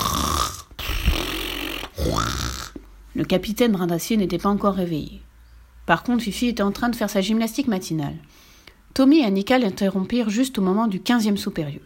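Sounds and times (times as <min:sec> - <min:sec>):
loud snoring with long rasping breaths and a whistling rise: 0:00.0 - 0:02.8
speech: 0:03.2 - 0:05.3, 0:05.9 - 0:11.8.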